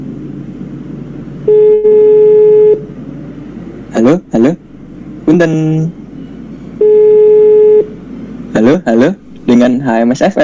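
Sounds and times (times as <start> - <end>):
low hum: 0.0 - 10.4
steady electronic telephone tone: 1.4 - 2.9, 6.8 - 7.9
speech: 4.1 - 4.6, 5.3 - 6.0, 8.6 - 10.4.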